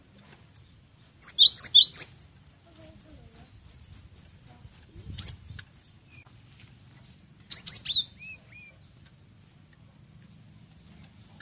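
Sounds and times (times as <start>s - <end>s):
cinereous tit high slurred notes: 1.2s - 2.3s, 7.0s - 8.8s.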